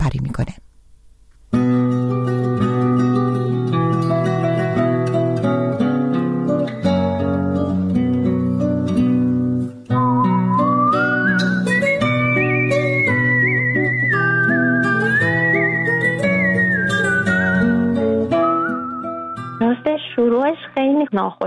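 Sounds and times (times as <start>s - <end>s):
speech: 0.1s - 0.7s
instrumental music: 1.5s - 20.7s
woman musician whistling a wavering melody: 9.9s - 19.9s.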